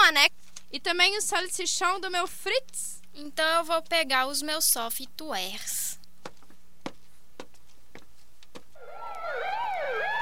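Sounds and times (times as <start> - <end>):
speech: 0.2 - 5.8
police siren wailing in a fast warbling pattern: 8.8 - 10.1.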